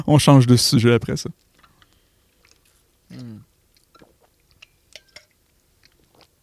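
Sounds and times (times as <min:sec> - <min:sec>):
speech: 0:00.0 - 0:01.5
lip clicks: 0:01.4 - 0:06.4
person sipping coffee: 0:01.4 - 0:06.4.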